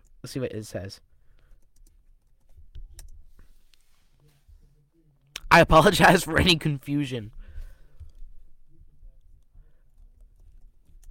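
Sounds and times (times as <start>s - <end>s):
speech: 0.2s - 1.1s, 5.6s - 7.4s
soft typing on a computer keyboard: 1.4s - 3.2s, 9.8s - 11.0s.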